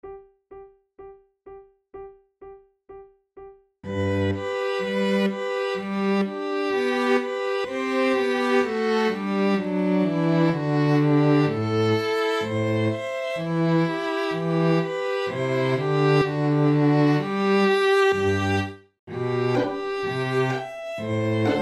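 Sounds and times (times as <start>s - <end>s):
strings: 3.9s - 21.6s
flute: 19.5s - 21.6s.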